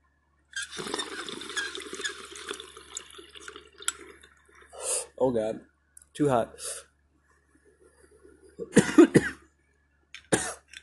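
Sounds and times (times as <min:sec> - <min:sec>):
water bubbling through a dab rig during inhale: 0:00.6 - 0:04.8
speech: 0:05.2 - 0:06.7.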